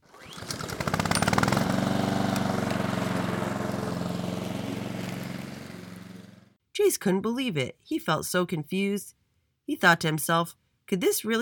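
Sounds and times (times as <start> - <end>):
lawn mower engine cutting grass: 0.0 - 6.6
speech: 6.8 - 11.4.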